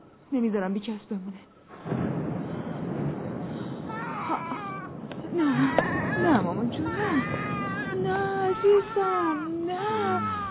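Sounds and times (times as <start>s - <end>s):
steady hiss: 0.0s - 10.4s
speech: 0.3s - 2.1s, 5.3s - 10.4s
baby crying: 3.9s - 4.9s, 5.5s - 10.4s.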